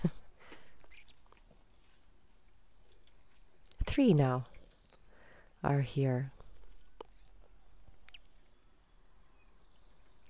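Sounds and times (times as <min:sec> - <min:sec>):
faint cardinal chirps at a bird feeder: 0:00.7 - 0:01.4, 0:04.5 - 0:10.2
speech: 0:04.0 - 0:04.5, 0:05.6 - 0:06.4.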